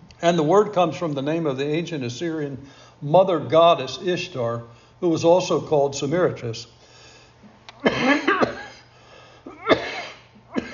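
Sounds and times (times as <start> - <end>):
speech: 0.2 - 6.8, 8.0 - 8.3
harsh coughing: 7.8 - 10.7.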